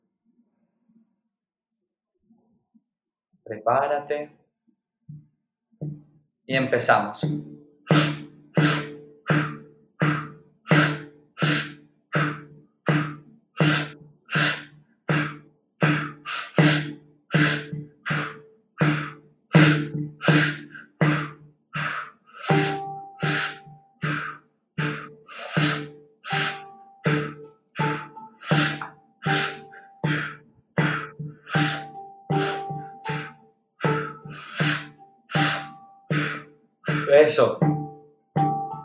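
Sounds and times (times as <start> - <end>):
speech: 3.5 - 4.4, 6.5 - 8.1, 37.3 - 37.7
person doing a breathing exercise with sipping inhales and mouth exhales: 7.9 - 37.5.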